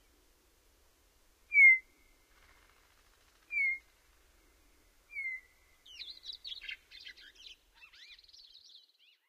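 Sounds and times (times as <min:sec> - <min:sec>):
Western meadowlark singing in North America: 0:01.5 - 0:02.1, 0:03.5 - 0:03.8, 0:05.1 - 0:09.2.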